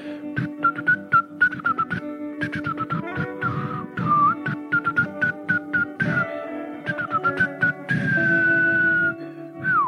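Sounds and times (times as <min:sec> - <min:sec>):
breathy flute-like whistled tune made by blowing into an arm: 0:00.4 - 0:09.8.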